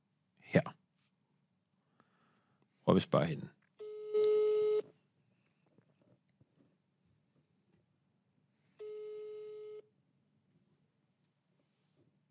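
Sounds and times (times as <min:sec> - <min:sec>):
speech: 0:02.9 - 0:03.6
phone ringback tone: 0:03.8 - 0:04.8, 0:08.8 - 0:09.8.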